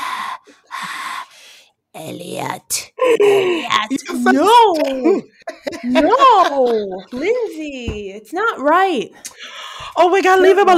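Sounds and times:
voice imitating an alien's heavy labored breathing: 0.0s - 1.6s
speech: 2.0s - 10.7s
laughter: 3.0s - 7.6s.

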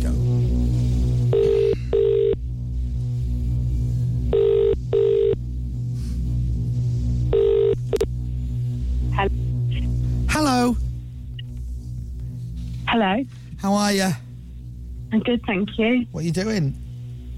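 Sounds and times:
faint low hum: 0.0s - 17.3s
telephone line ringing out while a number is called: 1.3s - 2.4s, 4.3s - 5.4s, 7.3s - 7.8s
speech: 13.1s - 14.2s, 15.1s - 16.8s.

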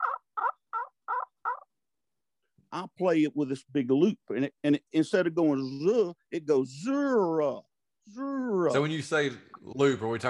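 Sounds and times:
turkey yelps from a friction call: 0.0s - 1.7s
speech: 2.7s - 10.2s.

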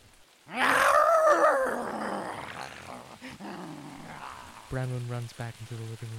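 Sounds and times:
loud pained howl trailing into a rough groan: 0.5s - 4.7s
speech: 4.7s - 6.1s.

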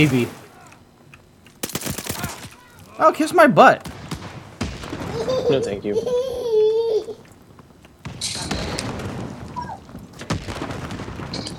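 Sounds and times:
speech: 0.0s - 0.4s, 3.0s - 3.9s, 5.2s - 6.4s
quiet rumbling: 0.0s - 11.5s
shotgun blasts in a video game: 1.6s - 2.9s, 3.8s - 5.6s, 8.0s - 11.5s
laughter: 5.1s - 7.2s.

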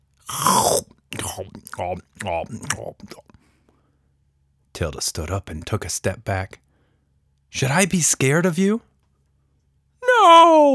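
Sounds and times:
speech: 0.3s - 3.3s, 4.8s - 6.6s, 7.5s - 8.9s, 10.2s - 10.7s
voice imitating loud wet chewing with grunts: 0.3s - 3.4s.

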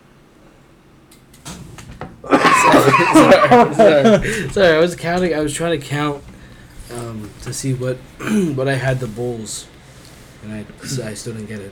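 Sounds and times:
person coughing harshly: 2.3s - 4.6s, 8.2s - 8.6s, 10.8s - 11.1s
laughter: 2.3s - 5.5s
speech: 2.8s - 6.3s, 7.1s - 9.7s, 10.4s - 11.7s.

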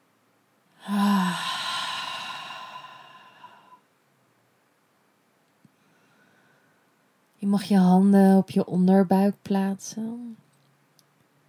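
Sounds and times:
deep breath in through the nose and out through the mouth: 0.8s - 3.9s, 5.7s - 7.0s
speech: 7.5s - 10.4s.

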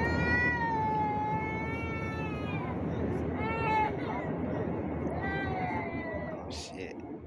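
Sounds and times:
child screaming in shrill wails on an airplane: 0.0s - 4.3s, 5.1s - 6.4s
low roar of airplane cabin noise: 0.0s - 7.2s.

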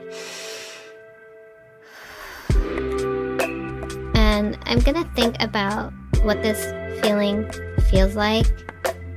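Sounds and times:
deep breath in and out: 0.0s - 1.1s, 1.8s - 2.8s
speech: 4.3s - 8.7s.

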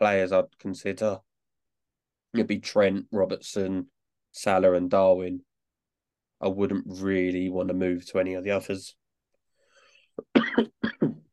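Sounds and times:
speech: 0.0s - 1.3s, 2.3s - 5.5s, 6.4s - 9.0s, 10.2s - 10.9s
person coughing: 10.2s - 11.3s.

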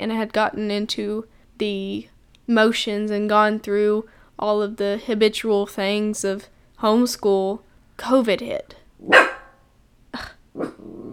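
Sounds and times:
speech: 0.0s - 9.3s, 10.2s - 10.8s
dog barking: 9.0s - 9.6s.

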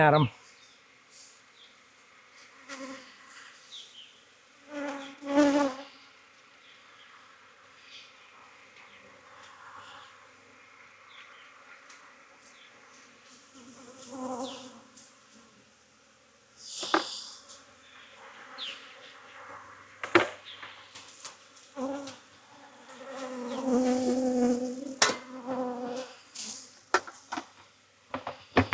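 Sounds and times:
speech: 0.0s - 0.4s
many honeybees buzzing: 0.0s - 27.4s.

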